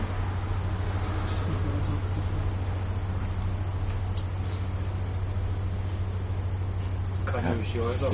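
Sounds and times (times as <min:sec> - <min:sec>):
car engine running at low revs while maneuvering: 0:00.0 - 0:08.1
road noise: 0:00.0 - 0:08.1
speech: 0:07.4 - 0:08.1.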